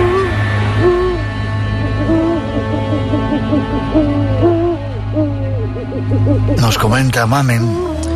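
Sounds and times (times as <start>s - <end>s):
owl hooting: 0.0s - 8.1s
speech: 6.8s - 7.9s.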